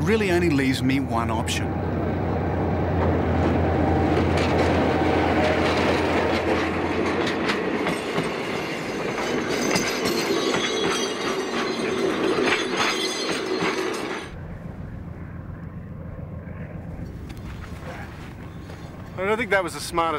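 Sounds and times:
speech: 0:00.1 - 0:01.8, 0:19.3 - 0:20.1
train heading towards Khartoum with wheels clacking over the rails: 0:03.0 - 0:14.4
metallic rattling and squeal of a moving train: 0:08.0 - 0:14.4.

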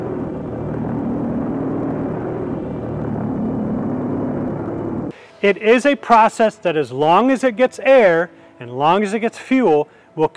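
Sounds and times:
V1 flying bomb pulse jet engine buzzing in flight: 0:00.0 - 0:05.4
speech: 0:05.4 - 0:10.3.

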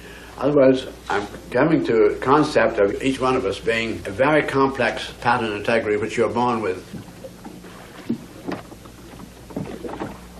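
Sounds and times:
constant low rumble of moving air and water: 0:00.0 - 0:10.3
speech: 0:00.4 - 0:07.1
oars rowing a boat: 0:05.7 - 0:10.3.

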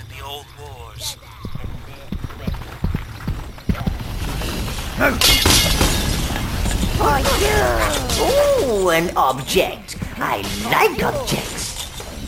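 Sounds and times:
busy noise: 0:00.0 - 0:12.2
speech: 0:00.3 - 0:01.4, 0:05.0 - 0:05.8, 0:07.0 - 0:11.6
hollow knocking thumps: 0:01.2 - 0:07.0
fragile object shattering with a sharp bright crash: 0:04.1 - 0:07.9
laughter: 0:06.8 - 0:09.6.

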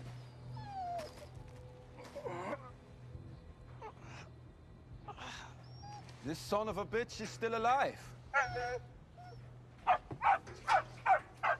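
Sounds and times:
low constant hum: 0:00.0 - 0:11.5
speech: 0:06.2 - 0:08.9
dog barking: 0:09.9 - 0:11.5.

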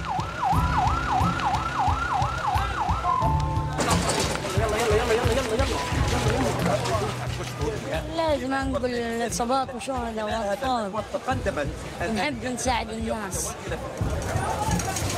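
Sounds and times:
ambulance siren wailing: 0:00.0 - 0:06.1
noisy crowded commotion with voices: 0:00.0 - 0:15.1
speech: 0:08.3 - 0:14.1.

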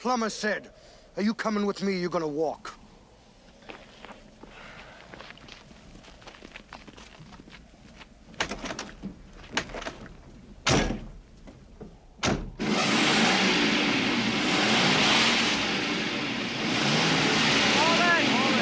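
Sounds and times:
speech: 0:00.0 - 0:02.8
car door clunks and thuds: 0:12.2 - 0:12.6
car engine revving, stuck in sand: 0:12.4 - 0:18.5.

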